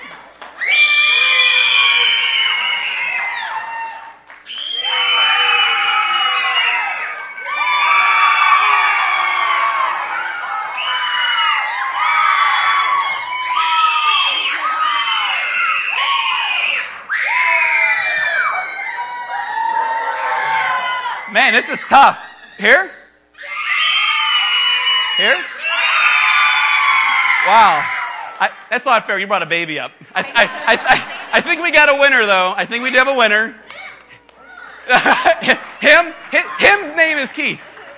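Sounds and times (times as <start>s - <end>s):
large audience cheering and screaming for contestants: 0.0s - 28.7s
speech: 21.6s - 22.9s, 27.5s - 33.6s, 34.9s - 37.7s
laughter: 30.0s - 32.9s, 34.1s - 37.9s.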